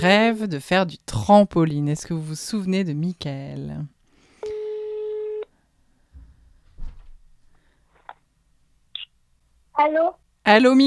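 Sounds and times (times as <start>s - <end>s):
speech: 0.0s - 4.0s, 9.8s - 10.8s
telephone line ring tone during an outgoing call: 4.4s - 5.5s.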